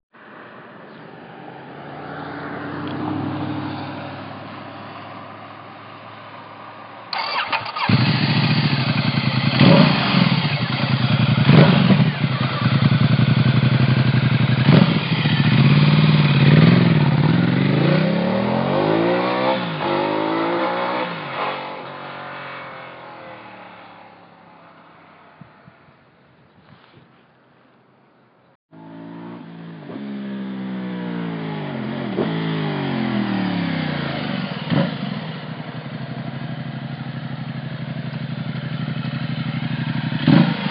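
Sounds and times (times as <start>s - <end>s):
XDiavel motorcycle engine: 5.8s - 26.1s, 28.7s - 40.6s.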